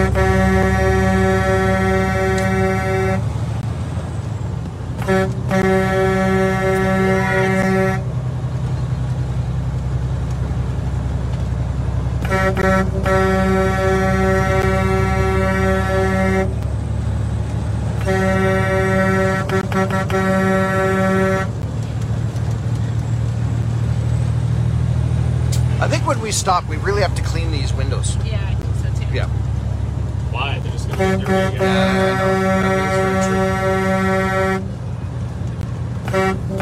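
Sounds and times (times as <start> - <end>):
vehicle horn blaring: 0.0 - 3.3, 5.0 - 8.1, 12.2 - 16.6, 18.0 - 21.6, 30.8 - 34.8, 36.0 - 36.6
low engine rumble: 0.0 - 36.6.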